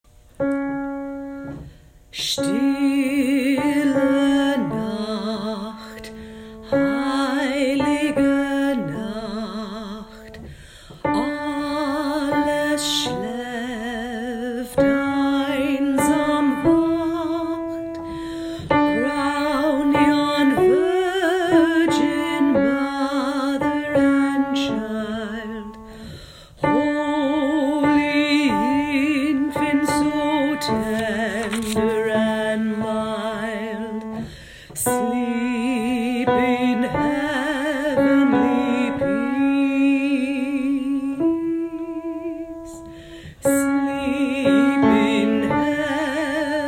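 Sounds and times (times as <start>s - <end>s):
alto voice singing a carol: 2.2s - 25.9s, 26.6s - 46.6s.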